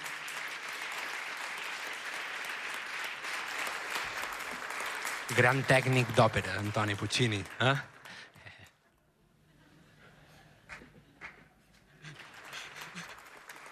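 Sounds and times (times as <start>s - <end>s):
audience applauding at a live concert in a theatre in Palma: 0.0s - 8.7s, 12.0s - 13.7s
speech: 5.3s - 7.9s.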